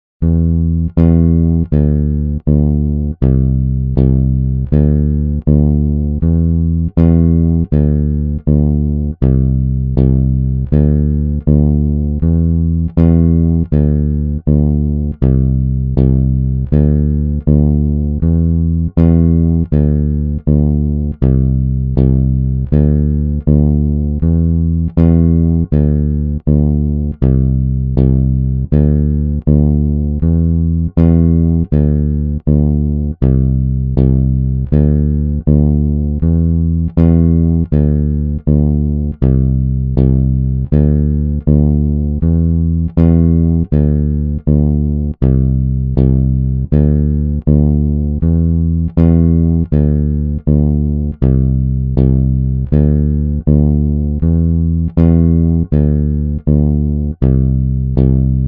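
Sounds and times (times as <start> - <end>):
80 bpm bass: 0.0 - 58.4.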